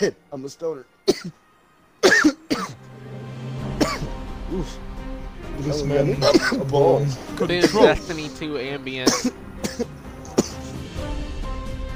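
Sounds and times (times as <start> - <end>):
speech: 0.0 - 1.4, 3.8 - 4.9, 5.6 - 10.0
harsh coughing fit: 1.1 - 1.4, 2.0 - 2.8, 3.8 - 4.1, 6.2 - 6.6, 9.0 - 10.8.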